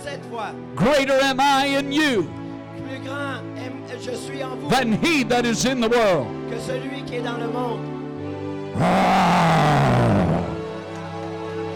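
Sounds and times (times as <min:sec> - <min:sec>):
speech: 0:00.1 - 0:08.0, 0:08.8 - 0:10.5
lion roaring: 0:08.8 - 0:10.7.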